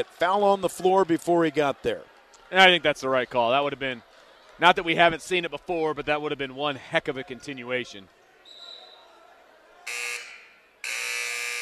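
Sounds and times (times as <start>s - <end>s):
speech: 0.0s - 8.6s
faint crowd noise: 0.0s - 10.9s
arena basketball game buzzer blasts: 9.9s - 11.5s.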